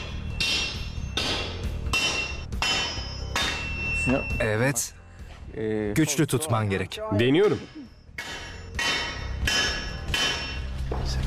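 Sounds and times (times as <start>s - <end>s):
hammer striking metal to stretch it: 0.0s - 4.4s, 7.3s - 10.8s
speech: 4.0s - 5.0s, 5.6s - 8.0s.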